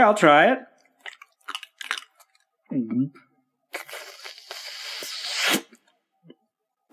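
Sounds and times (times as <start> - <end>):
speech: 0.0 - 0.7, 2.7 - 3.2
crunchy chewing of a seltzer tablet: 0.8 - 2.5, 3.7 - 5.9
foaming hiss of a seltzer tablet: 3.8 - 5.7.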